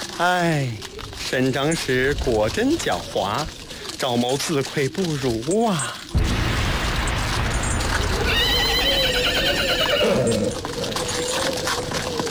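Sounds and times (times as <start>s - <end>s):
faint hoof clip-clop of a horse-drawn carriage: 0.0s - 12.2s
speech: 0.2s - 6.0s
horse neighing: 8.2s - 12.2s.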